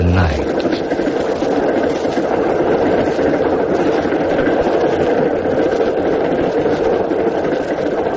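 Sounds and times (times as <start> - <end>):
train rolling along rails at night with rattling clatter: 0.0 - 8.1
speech: 0.2 - 1.0.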